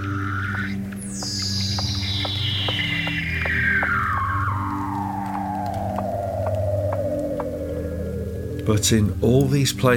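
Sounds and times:
Weddell seal call gliding downward underwater: 0.0 - 8.6
constant low drone underwater: 0.0 - 9.9
speech: 8.7 - 9.9.

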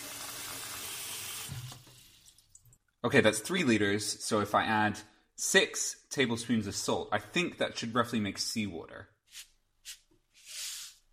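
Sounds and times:
water running from a tap into a large pot: 0.0 - 2.7
speech: 3.0 - 10.0.

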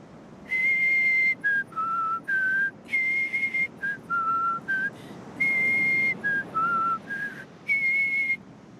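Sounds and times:
several people whistling a made-up tune at dawn: 0.5 - 8.4.

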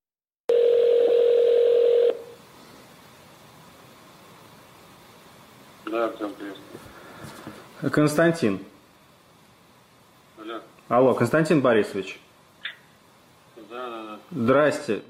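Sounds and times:
faint phone line hiss: 0.5 - 2.4
loud steady telephone ring tone: 0.5 - 2.4
speech: 5.9 - 8.7, 10.9 - 12.3, 13.7 - 15.0.

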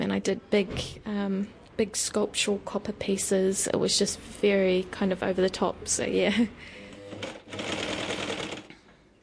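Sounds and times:
speech: 0.1 - 7.8
sewing machine stitching: 6.9 - 8.7.

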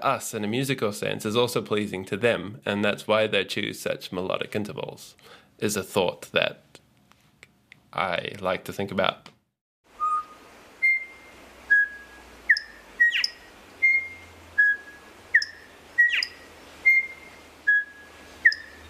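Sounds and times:
speech: 0.0 - 6.7, 7.9 - 9.3
male songbird singing a melodic whistled song: 10.0 - 18.8.

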